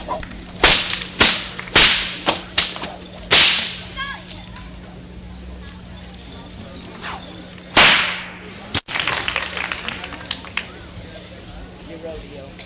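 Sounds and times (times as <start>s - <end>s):
steady low hum: 0.0s - 12.6s
bullwhip cracking: 0.6s - 3.9s, 7.0s - 9.0s.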